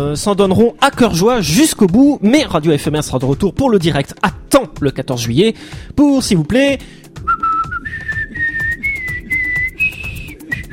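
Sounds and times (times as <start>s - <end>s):
speech: 0.0s - 7.4s
person whistling a lively anthem melody: 7.2s - 10.7s.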